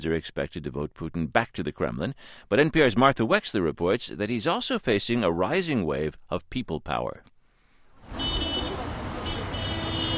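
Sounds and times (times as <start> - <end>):
speech: 0.0 - 7.3
roar of passing traffic in wet snow: 8.0 - 10.1
car horns honking in street traffic: 8.1 - 10.1.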